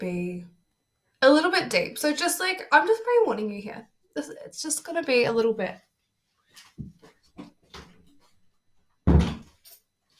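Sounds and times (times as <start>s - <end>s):
speech: 0.0s - 0.6s, 1.2s - 5.9s
door pushed shut with a solid thud: 9.1s - 9.6s.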